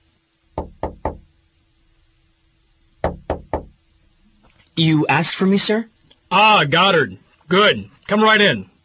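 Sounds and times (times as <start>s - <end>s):
quick solid knocks on a wooden office door: 0.6s - 1.3s, 3.0s - 3.8s
speech: 4.8s - 8.7s.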